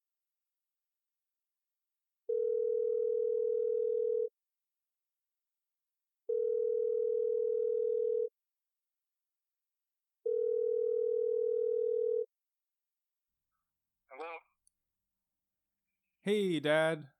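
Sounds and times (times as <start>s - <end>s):
phone ringback tone on speakerphone: 2.3s - 4.3s, 6.3s - 8.3s, 10.3s - 12.3s
speech: 16.2s - 17.1s.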